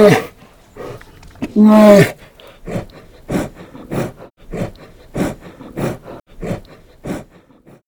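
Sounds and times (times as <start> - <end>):
roaring breath: 0.2 - 7.8.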